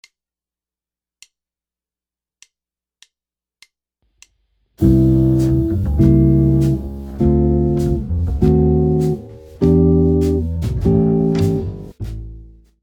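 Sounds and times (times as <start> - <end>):
guitar playing a jazz chord progression: 4.8 - 12.6.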